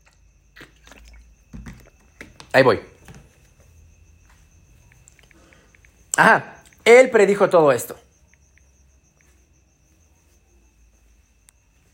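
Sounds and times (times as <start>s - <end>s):
wet slurps from sipping water: 0.0s - 2.0s
person sipping water: 0.0s - 2.4s
soft gulp of water: 0.0s - 2.4s
speech: 2.5s - 2.9s, 6.2s - 8.0s.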